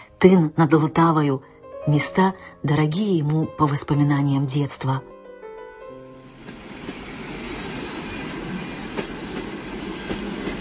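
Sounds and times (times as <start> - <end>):
speech: 0.2 - 5.1
moving train rumbling: 6.2 - 10.6.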